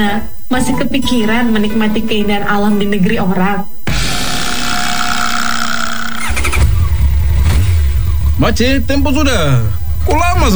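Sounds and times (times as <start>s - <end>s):
speech: 0.0s - 3.8s, 8.4s - 10.5s
motorcycle engine starting and revving: 3.9s - 10.5s.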